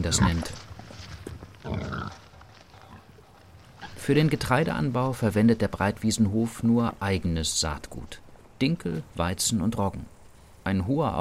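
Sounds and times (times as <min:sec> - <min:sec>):
pig grunting in an outdoor farm pig run: 0:00.0 - 0:00.6, 0:01.6 - 0:03.1
speech: 0:00.0 - 0:00.7, 0:04.0 - 0:11.1
faint shuffling in a farmyard: 0:00.0 - 0:11.1.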